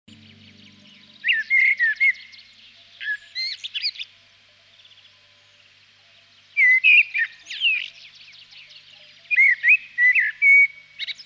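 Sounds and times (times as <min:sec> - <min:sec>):
Common blackbird singing fluty warbling phrases: 0:00.1 - 0:11.2.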